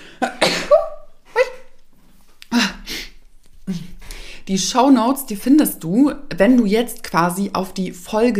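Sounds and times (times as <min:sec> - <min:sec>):
person sneezing: 0:00.0 - 0:01.7, 0:02.5 - 0:04.0
speech: 0:04.5 - 0:08.3.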